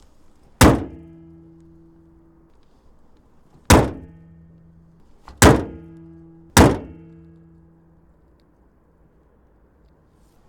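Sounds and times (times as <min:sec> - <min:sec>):
Nissan Qashqai I 1.6 car hood closing: 0:00.6 - 0:01.3, 0:03.6 - 0:04.4, 0:05.3 - 0:07.4.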